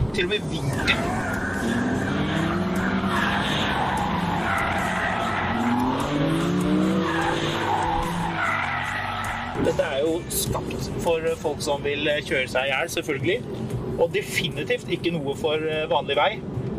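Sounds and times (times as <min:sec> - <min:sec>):
BMW M car engine roaring: 0:00.0 - 0:09.8
speech: 0:00.2 - 0:02.1, 0:09.6 - 0:16.5
BMW M car tire squeal while drifting on a track: 0:00.7 - 0:10.2.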